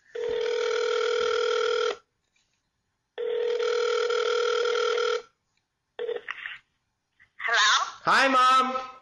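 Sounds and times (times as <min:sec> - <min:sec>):
phone ringback tone over a speakerphone: 0:00.1 - 0:02.0, 0:03.2 - 0:05.3
speech: 0:08.0 - 0:08.9.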